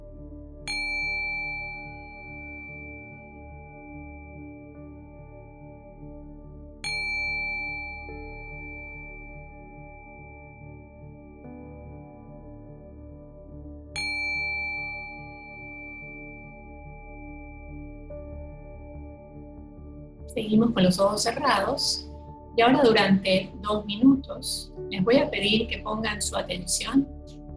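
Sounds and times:
meditation bell struck during a guided meditation: 0:00.7 - 0:04.2, 0:06.8 - 0:11.0, 0:14.0 - 0:17.5
speech: 0:20.4 - 0:27.1.

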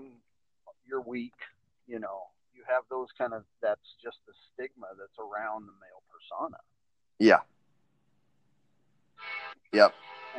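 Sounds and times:
speech: 0:00.9 - 0:07.5, 0:09.2 - 0:10.1
loud brassy train horn blast: 0:09.2 - 0:10.3.

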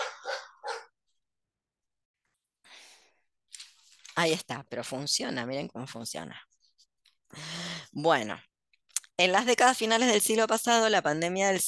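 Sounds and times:
dog barking: 0:00.0 - 0:01.0
speech: 0:04.2 - 0:06.5, 0:07.3 - 0:08.5, 0:09.2 - 0:11.6.

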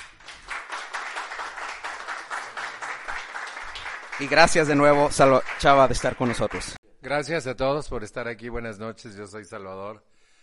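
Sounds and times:
crowd applauding: 0:00.0 - 0:06.8
speech: 0:04.2 - 0:10.1.

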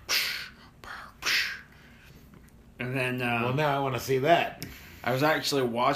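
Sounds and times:
voice imitating heavy mechanical respirator mask breathing: 0:00.0 - 0:02.0
speech: 0:02.8 - 0:05.9.

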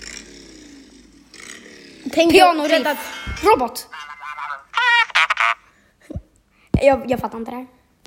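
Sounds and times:
motorcycle engine droning and revving: 0:00.0 - 0:03.4
speech: 0:02.1 - 0:04.0, 0:06.8 - 0:07.8.

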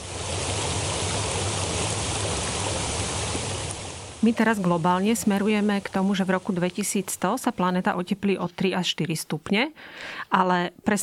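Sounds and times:
floodwater of a swollen stream rushing after incessant rain: 0:00.0 - 0:07.4
speech: 0:04.2 - 0:11.0.

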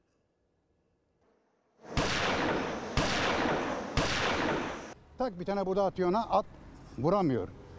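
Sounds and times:
gunshots: 0:01.8 - 0:05.0
speech: 0:05.2 - 0:07.6.

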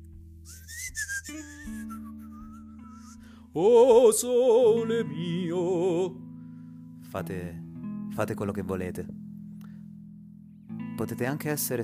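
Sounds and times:
person whistling a short melodic phrase: 0:00.4 - 0:03.5
speech: 0:03.6 - 0:06.2, 0:07.1 - 0:07.6, 0:08.2 - 0:09.2, 0:11.0 - 0:11.8.

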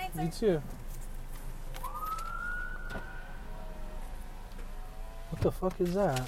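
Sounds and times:
speech: 0:00.2 - 0:00.8, 0:05.4 - 0:06.2
police siren from a pickup truck wailing: 0:01.8 - 0:05.4.

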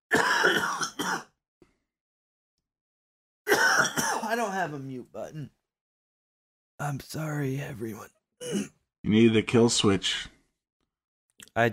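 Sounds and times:
person clearing throat roughly: 0:00.1 - 0:01.3, 0:03.5 - 0:04.4, 0:08.4 - 0:08.8
person coughing with a short hack: 0:00.1 - 0:01.4, 0:03.5 - 0:04.5, 0:08.4 - 0:08.8
speech: 0:04.3 - 0:05.6, 0:06.8 - 0:10.4.

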